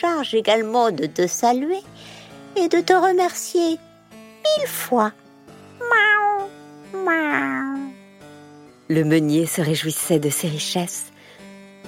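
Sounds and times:
speech: 0.0s - 5.2s, 5.8s - 7.9s, 8.9s - 11.1s
cat meowing: 5.8s - 7.9s.

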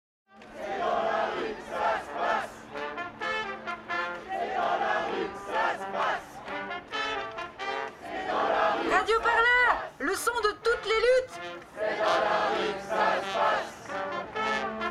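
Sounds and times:
large protest crowd chanting at a demonstration: 0.4s - 3.0s, 3.8s - 10.1s, 11.2s - 14.8s
protest crowd shouting at a demonstration: 0.5s - 2.8s, 4.2s - 6.5s, 7.8s - 13.8s.

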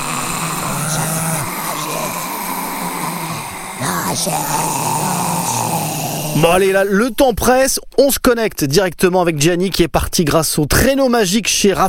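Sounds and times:
hungry people groaning behind a window: 0.0s - 7.1s
speech: 4.2s - 11.8s.

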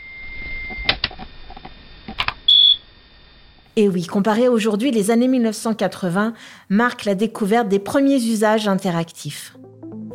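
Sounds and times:
loud piercing high modem beep: 2.5s - 2.8s
speech: 3.8s - 10.1s.

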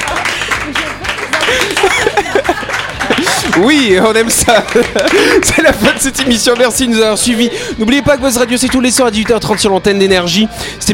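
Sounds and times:
people laughing: 0.0s - 8.0s
applause from a small group: 0.0s - 10.0s
people chattering: 0.0s - 10.9s
speech: 3.6s - 10.9s.

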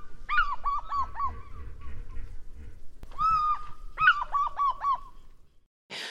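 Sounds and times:
eagle's ringing yelping call: 0.0s - 2.4s, 3.0s - 5.4s.

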